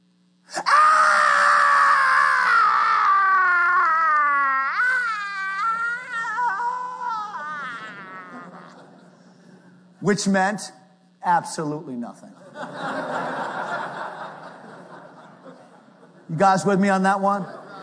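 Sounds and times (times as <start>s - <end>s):
person imitating a young son's blood-curdling scream: 0.5s - 8.8s
laughter: 4.3s - 9.6s, 12.4s - 16.3s, 17.3s - 17.8s
speech: 10.1s - 12.9s, 16.3s - 17.6s.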